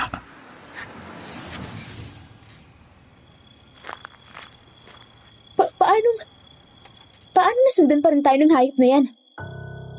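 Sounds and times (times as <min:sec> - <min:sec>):
footsteps of people walking toward a house: 0:03.7 - 0:05.5
speech: 0:07.8 - 0:09.2.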